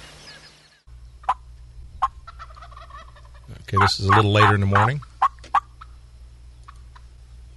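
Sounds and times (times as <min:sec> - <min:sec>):
low steady rumble: 0:00.0 - 0:07.5
turkey gobbler clucking in the morning: 0:01.2 - 0:07.2
speech: 0:03.7 - 0:05.1.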